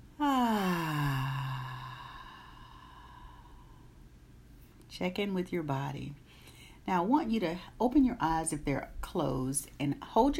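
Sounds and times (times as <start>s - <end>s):
long voiced sigh during a guided breathing exercise: 0.2s - 3.9s
speech: 5.0s - 6.2s, 6.8s - 10.3s.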